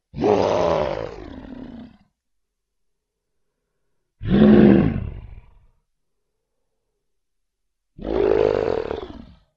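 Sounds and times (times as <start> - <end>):
wild animals: 0.1 - 2.1, 4.2 - 5.8, 8.0 - 9.5.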